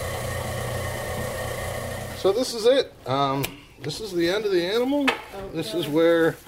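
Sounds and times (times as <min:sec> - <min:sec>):
meat grinder motor humming: 0:00.0 - 0:02.3
speech: 0:02.2 - 0:06.4.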